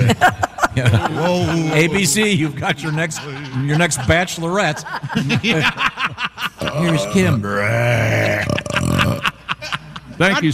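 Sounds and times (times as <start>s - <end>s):
laughter: 0.0s - 10.5s
speech: 0.1s - 9.3s, 10.2s - 10.5s
loud drawn-out belch: 6.7s - 9.4s.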